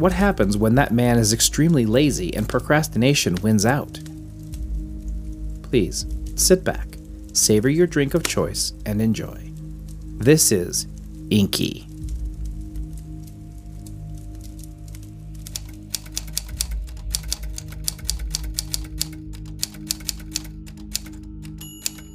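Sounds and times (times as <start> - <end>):
speech: 0.0 - 4.1, 5.7 - 9.5, 10.2 - 11.9
typewriter keys typing rapidly: 15.5 - 22.1.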